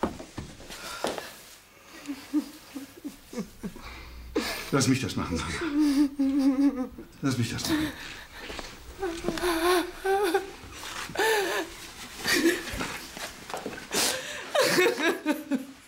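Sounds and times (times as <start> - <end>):
person sobbing with gasping breaths: 1.9 - 13.0
laughter: 2.0 - 8.6, 13.9 - 15.8
speech: 4.7 - 8.2.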